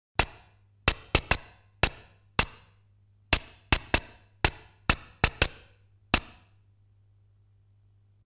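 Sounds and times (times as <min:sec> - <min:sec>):
sword striking: 0:00.2 - 0:02.8, 0:03.4 - 0:06.5.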